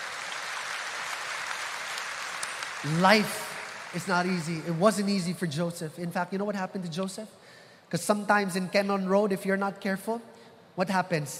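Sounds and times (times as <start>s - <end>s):
audience clapping hands: 0.0s - 5.1s
speech: 2.8s - 11.3s.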